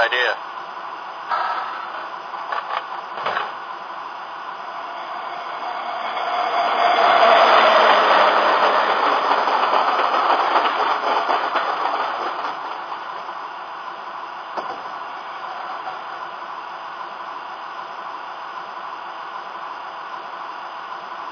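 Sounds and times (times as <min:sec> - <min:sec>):
train rumbling past on the rails: 0:01.3 - 0:16.8.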